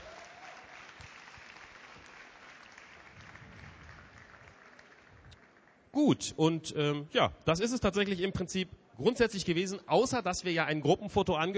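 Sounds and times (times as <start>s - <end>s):
audience applause: 0.0s - 5.8s
speech: 6.0s - 11.5s.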